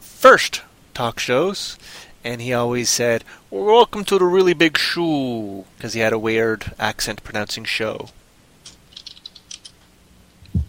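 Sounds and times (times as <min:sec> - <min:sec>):
speech: 0:00.2 - 0:08.2
typing on a computer keyboard into a chat room: 0:08.6 - 0:09.8
soft low thump: 0:10.5 - 0:10.6.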